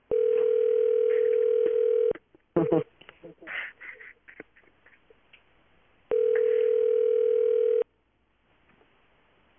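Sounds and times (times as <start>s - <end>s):
telephone ringback tone while on hold with a helpline: 0.1s - 2.2s, 6.1s - 7.8s.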